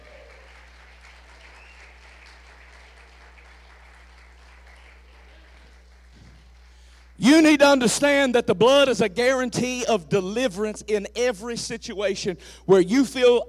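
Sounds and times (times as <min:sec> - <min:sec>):
crowd clapping in a large room: 0:00.0 - 0:07.2
low constant hum: 0:00.0 - 0:13.4
speech: 0:07.2 - 0:13.4.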